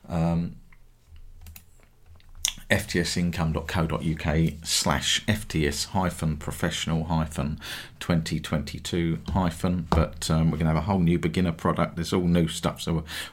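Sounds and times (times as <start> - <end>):
speech: 0.3 - 0.6, 2.7 - 13.3
soft clicks and taps of typing on a computer keyboard: 1.4 - 1.7.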